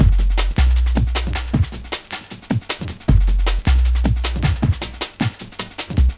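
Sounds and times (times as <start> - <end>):
drum and bass music: 0.0 - 6.1.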